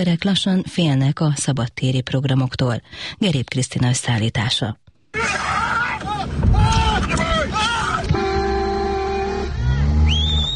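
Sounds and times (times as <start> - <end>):
speech: 0.0 - 5.6
people shouting and yelling: 5.2 - 10.1
car horns honking: 6.6 - 10.5.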